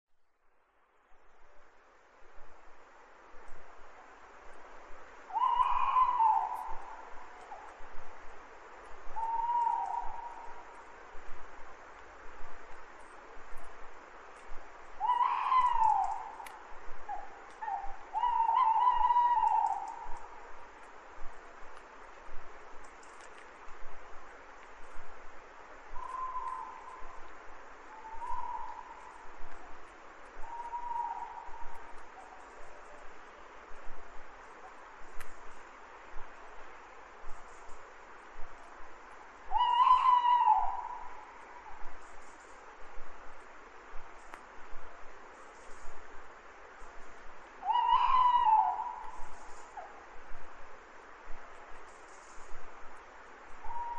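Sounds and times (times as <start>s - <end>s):
owls hooting: 5.3s - 7.8s, 9.1s - 10.5s, 15.0s - 20.4s, 26.0s - 27.3s, 27.9s - 29.6s, 30.4s - 33.0s, 39.5s - 42.4s, 47.6s - 50.0s, 53.6s - 53.9s.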